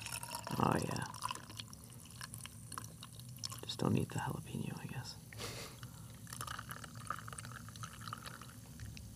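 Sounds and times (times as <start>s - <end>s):
cilantro and jalapeno cocktail poured over ice: 0.0s - 3.8s, 6.2s - 9.0s
speech: 0.6s - 1.1s, 3.9s - 4.6s.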